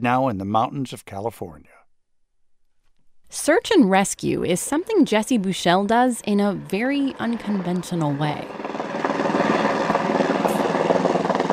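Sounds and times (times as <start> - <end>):
speech: 0.0 - 1.8, 3.3 - 8.6
helicopter rotor chopping flying in from the Sierra Nevada in California: 3.8 - 11.5.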